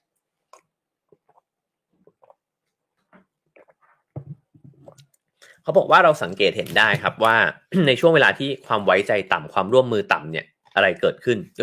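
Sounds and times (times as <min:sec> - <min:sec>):
person sipping water with slurps and swallows: 0:00.0 - 0:05.6
speech: 0:05.6 - 0:11.6.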